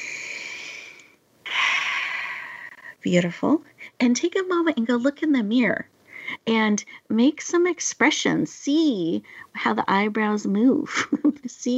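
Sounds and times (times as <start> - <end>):
person taking a deep breath: 0.0 - 2.9
speech: 3.0 - 11.7.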